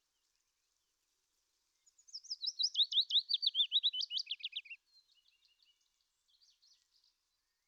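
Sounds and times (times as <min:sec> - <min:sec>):
willow warbler singing slurred whistles: 0:01.8 - 0:07.0.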